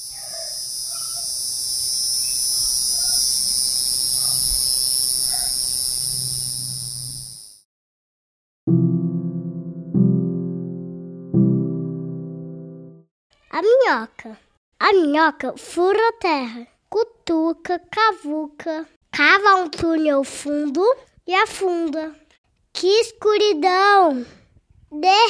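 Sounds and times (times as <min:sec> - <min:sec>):
cicada buzzing: 0:00.0 - 0:07.6
bright ringing musical notes: 0:08.7 - 0:13.0
speech: 0:13.6 - 0:22.2, 0:22.8 - 0:25.2.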